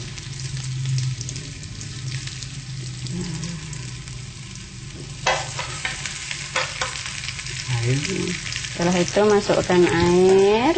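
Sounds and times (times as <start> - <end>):
vegan meat sizzling and frying in a pan: 0.0 - 10.7
scraping stirs of vegan meat in a pan: 5.2 - 7.3
speech: 7.9 - 10.7.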